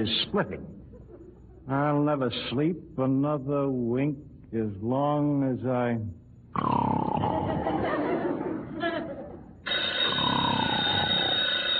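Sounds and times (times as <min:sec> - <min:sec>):
speech: 0:00.0 - 0:00.8, 0:01.6 - 0:07.7
laughter: 0:00.8 - 0:01.7, 0:07.2 - 0:09.5
telephone bell ringing with a harsh metallic jangle: 0:09.6 - 0:11.7.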